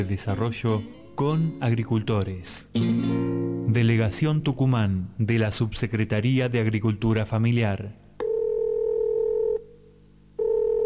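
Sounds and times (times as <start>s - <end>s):
speech: 0.0s - 8.0s
telephone dial tone: 8.2s - 9.7s, 10.4s - 10.8s.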